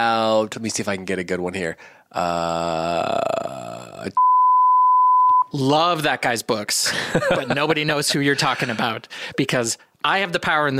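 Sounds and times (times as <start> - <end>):
speech: 0.0 - 4.2, 5.5 - 10.7
drawn-out vocal sound: 2.1 - 4.2
high-pitched censor bleep over spoken words: 4.2 - 5.5
laughter: 6.8 - 9.1.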